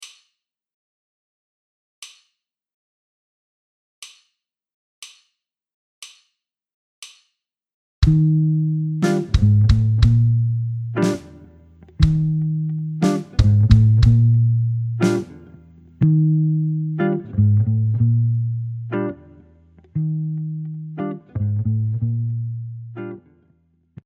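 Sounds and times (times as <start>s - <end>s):
jazz guitar ballad: 8.0s - 23.2s.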